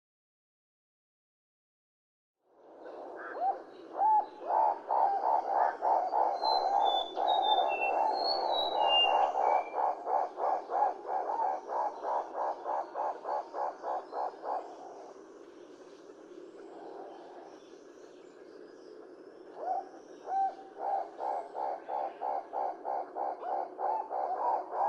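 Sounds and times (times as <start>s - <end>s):
yellow-billed turaco calling: 2.8s - 15.1s, 19.5s - 24.8s.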